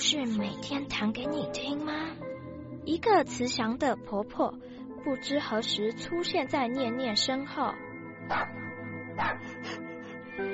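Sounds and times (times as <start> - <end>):
steady tonal background: 0.0 - 10.5
speech: 0.1 - 8.6, 9.2 - 9.8
small dog yipping and barking: 8.3 - 8.6, 9.2 - 9.5.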